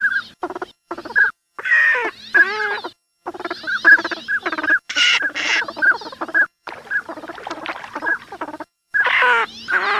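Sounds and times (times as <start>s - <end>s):
bird sound: 0.0s - 9.9s.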